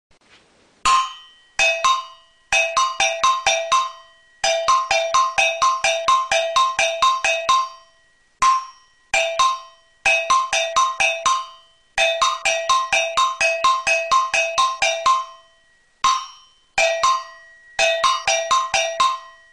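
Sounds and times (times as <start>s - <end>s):
agogo bells: 0.8s - 19.5s.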